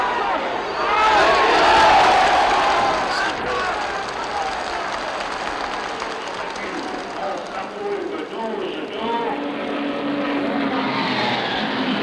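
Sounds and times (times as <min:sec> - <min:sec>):
murmuring voices of a crowd: 0:00.0 - 0:11.9
large stadium crowd clapping: 0:01.0 - 0:09.2.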